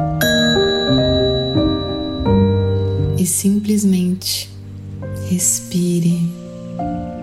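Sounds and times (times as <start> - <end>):
bell tones ringing: 0.2 - 3.9
speech: 3.3 - 4.5, 5.3 - 7.1.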